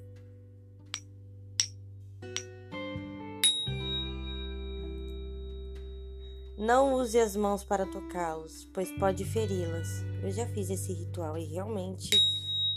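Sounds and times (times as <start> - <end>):
small handbell ringing: 3.4 - 6.4, 12.1 - 12.7
speech: 6.6 - 12.5.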